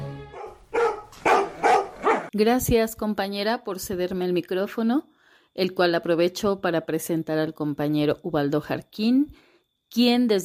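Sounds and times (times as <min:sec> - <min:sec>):
dogs barking: 0:00.3 - 0:02.3
speech: 0:02.3 - 0:10.4.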